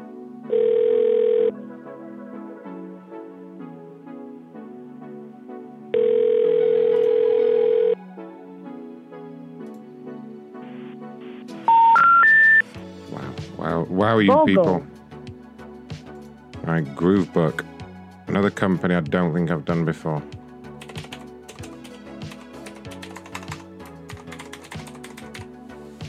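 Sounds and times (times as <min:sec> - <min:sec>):
soft music: 0:00.0 - 0:26.0
telephone tones: 0:00.5 - 0:01.5, 0:05.9 - 0:08.0, 0:11.7 - 0:12.6
quick beeps stepping upward in pitch: 0:11.7 - 0:12.6
speech: 0:14.0 - 0:14.9, 0:16.7 - 0:17.7, 0:18.3 - 0:20.4.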